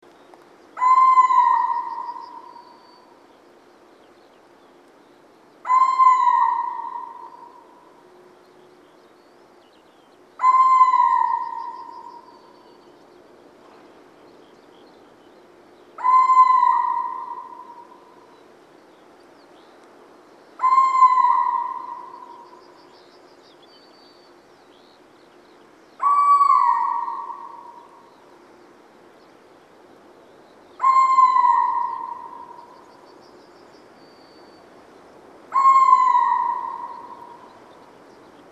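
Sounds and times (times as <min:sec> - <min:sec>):
little owl: 0:00.8 - 0:03.0, 0:05.6 - 0:07.8, 0:10.4 - 0:12.6, 0:16.0 - 0:18.2, 0:20.6 - 0:22.8, 0:26.0 - 0:28.1, 0:30.8 - 0:33.0, 0:35.5 - 0:37.5.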